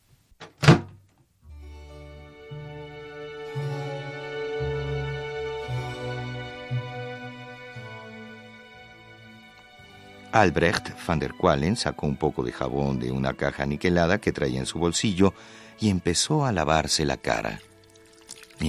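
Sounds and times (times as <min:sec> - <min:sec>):
door shutting: 0:00.4 - 0:01.1
sustained layered musical tones: 0:01.5 - 0:18.6
speech: 0:10.3 - 0:17.7.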